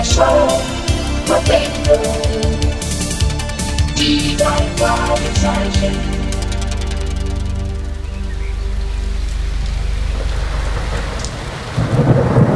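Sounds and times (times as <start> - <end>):
heavy rain in a thunderstorm: 0.0 - 12.5
speech: 4.0 - 6.2
deep rolling thunder: 8.8 - 12.5.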